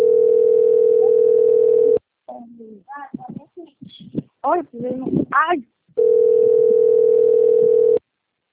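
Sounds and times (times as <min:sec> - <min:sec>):
telephone ringback tone of an outgoing call: 0:00.0 - 0:02.0, 0:06.0 - 0:08.0
speech: 0:04.5 - 0:05.7.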